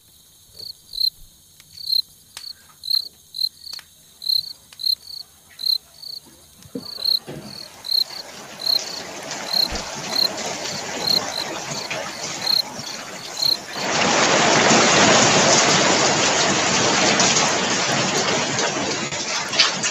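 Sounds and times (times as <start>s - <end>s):
crickets chirping: 0.0s - 14.3s
rain falling outside: 1.7s - 19.8s.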